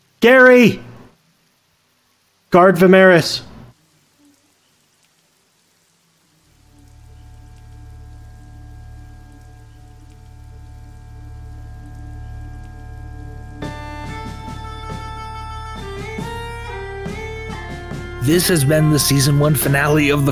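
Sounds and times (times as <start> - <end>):
steady rain falling: 0.0 - 20.2
speech: 0.2 - 0.9, 2.5 - 3.5, 18.3 - 20.2
music with sharp plucked notes: 11.8 - 20.2.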